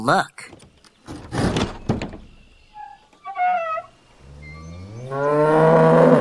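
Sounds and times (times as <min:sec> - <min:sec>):
speech: 0:00.0 - 0:00.6
heavy thumps: 0:00.6 - 0:02.5
cow mooing: 0:04.6 - 0:06.1.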